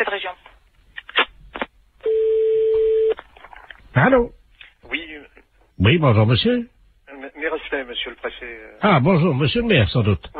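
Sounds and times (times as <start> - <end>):
speech: 0.0 - 0.4, 4.0 - 4.4, 5.8 - 6.7, 7.7 - 10.3
long steady mid-pitched telephone tone: 2.0 - 3.2.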